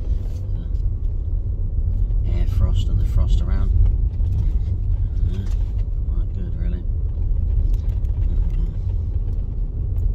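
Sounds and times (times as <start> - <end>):
car engine rumble driving slowly into an empty car park by a lake: 0.0 - 10.1
speech: 2.6 - 3.9, 5.3 - 5.8.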